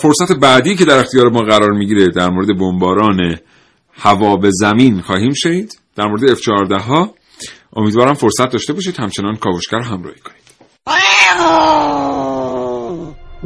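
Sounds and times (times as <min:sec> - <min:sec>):
speech: 0:00.0 - 0:12.5
cat yowling and caterwauling: 0:10.9 - 0:13.2.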